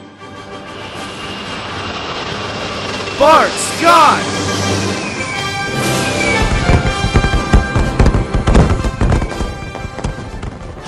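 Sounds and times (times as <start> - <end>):
jet aircraft flying overhead: 0.0 - 9.9
speech: 3.2 - 4.3.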